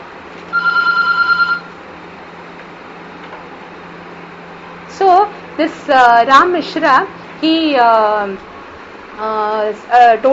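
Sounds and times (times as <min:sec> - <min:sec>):
quiet hum: 0:00.0 - 0:10.3
telephone ringing in an electronic trill: 0:00.5 - 0:01.8
speech: 0:05.6 - 0:08.5, 0:09.2 - 0:10.3.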